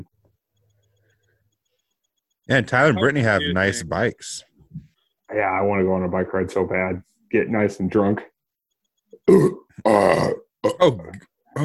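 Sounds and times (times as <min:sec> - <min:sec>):
speech: 0:02.5 - 0:04.5, 0:05.3 - 0:08.3, 0:09.2 - 0:11.6
loud burping: 0:09.2 - 0:11.6.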